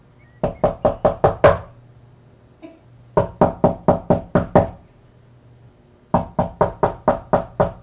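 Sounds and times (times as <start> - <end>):
loud heavy knocking on a front door to the street: 0.4 - 1.7, 3.2 - 4.8, 6.1 - 7.8.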